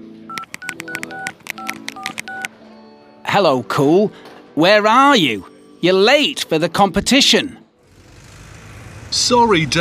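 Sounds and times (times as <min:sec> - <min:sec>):
electronic keypad beeps dialing a mobile phone: 0:00.3 - 0:02.5
speech: 0:03.3 - 0:07.6, 0:09.1 - 0:09.8.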